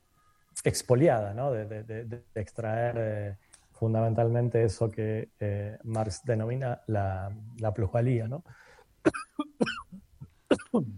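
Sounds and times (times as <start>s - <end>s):
speech: 0.6s - 9.2s, 10.7s - 10.9s
harsh throaty coughing fit: 9.0s - 10.9s.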